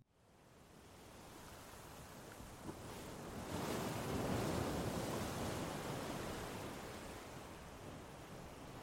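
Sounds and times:
ocean waves breaking on shore: 2.6s - 8.8s.

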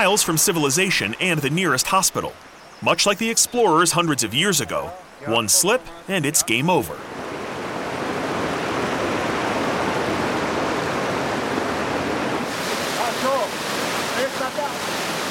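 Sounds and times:
speech: 0.0s - 7.2s
fast-flowing river water rushing: 0.0s - 15.2s.

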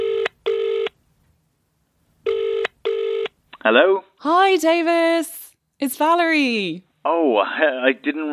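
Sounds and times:
telephone ringing tone of an outgoing call on speakerphone: 0.0s - 1.0s, 2.3s - 3.3s
speech: 3.6s - 8.3s.

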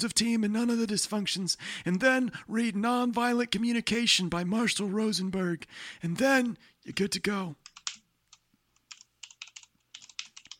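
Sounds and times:
speech: 0.0s - 7.7s
quick irregular computer keyboard clatter: 7.6s - 10.5s.

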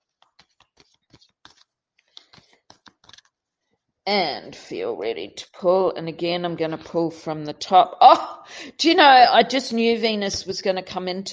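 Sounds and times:
deck of tarot cards being shuffled during a card reading: 0.0s - 3.5s
speech: 4.1s - 11.3s.

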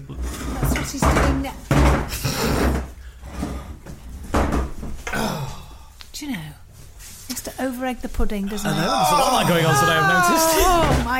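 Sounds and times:
wooden chair scraping and creaking as it is moved: 0.2s - 5.0s
speech: 0.8s - 2.7s, 7.6s - 11.1s.

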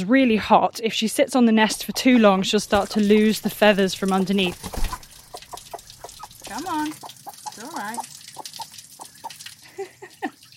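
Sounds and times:
speech: 0.0s - 5.0s, 6.5s - 8.2s
running water of a cold shower: 1.7s - 10.5s
hen clucking: 2.2s - 9.5s.

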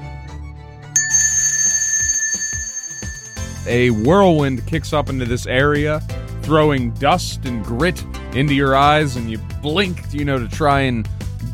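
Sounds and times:
bell in a depot ringing: 1.0s - 5.8s
speech: 3.7s - 11.5s.

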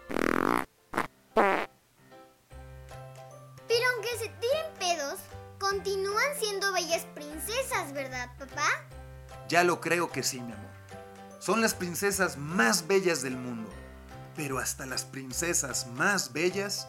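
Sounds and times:
farting: 0.0s - 1.7s
light musical accompaniment: 1.7s - 16.8s
child-like voice singing a bouncy tune: 3.7s - 8.8s
speech: 4.1s - 10.8s, 11.4s - 13.8s, 14.4s - 16.8s.

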